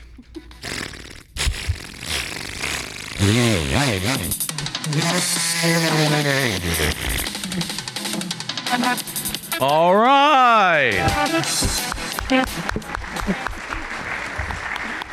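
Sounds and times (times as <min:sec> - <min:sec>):
person imitating a chainsaw with their voice: 0:00.5 - 0:08.1, 0:08.9 - 0:11.8
speech: 0:03.2 - 0:07.8, 0:08.8 - 0:13.5.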